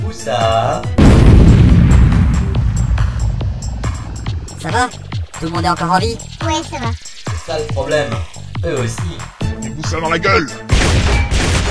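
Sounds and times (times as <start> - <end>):
speech: 0.1 - 1.0, 4.6 - 10.7
grenade explosion in a video game: 1.0 - 4.6, 10.7 - 11.6.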